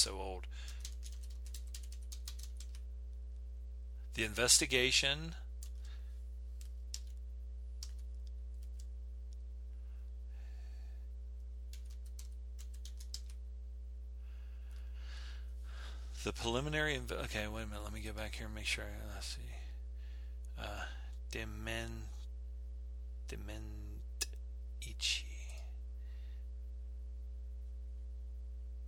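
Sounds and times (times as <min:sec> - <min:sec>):
steady low electrical hum: 0:00.0 - 0:28.8
typing on an old computer keyboard with worn-off keys: 0:00.7 - 0:02.8, 0:06.6 - 0:07.2, 0:07.8 - 0:08.9, 0:11.7 - 0:13.4
speech: 0:04.2 - 0:05.4, 0:16.3 - 0:19.7, 0:20.6 - 0:22.2, 0:23.3 - 0:23.9
person murmuring: 0:20.6 - 0:21.0.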